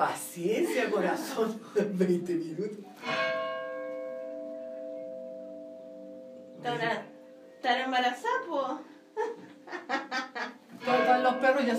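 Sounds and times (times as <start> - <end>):
speech: 0.0 - 3.3, 6.6 - 8.9, 11.3 - 11.7
church bells ringing: 3.0 - 8.0, 10.8 - 11.7.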